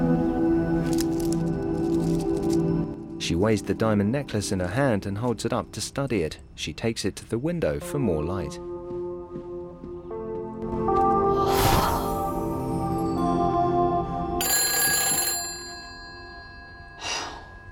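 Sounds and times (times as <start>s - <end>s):
sustained musical backdrop: 0.0s - 6.2s, 7.8s - 14.4s
speech: 3.3s - 8.7s
telephone ringing: 14.4s - 17.0s.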